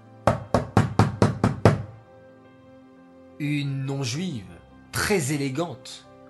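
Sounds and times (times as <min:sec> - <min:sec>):
knocking on a door: 0:00.3 - 0:02.0
speech: 0:03.4 - 0:06.1.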